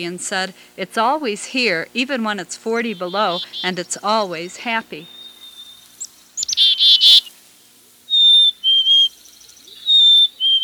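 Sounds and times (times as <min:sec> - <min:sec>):
speech: 0:00.0 - 0:05.2
black-capped chickadee whistled song: 0:02.9 - 0:10.6.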